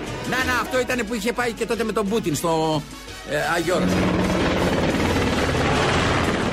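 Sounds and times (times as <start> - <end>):
speech: 0.3 - 4.3
helicopter rotor and engine roaring overhead: 3.0 - 6.5.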